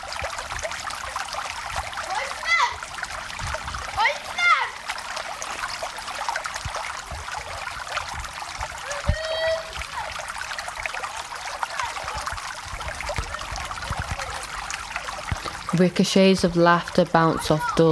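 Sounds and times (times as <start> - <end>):
water pouring and splashing onto a tiled floor: 0.0 - 17.9
speech: 15.8 - 17.9.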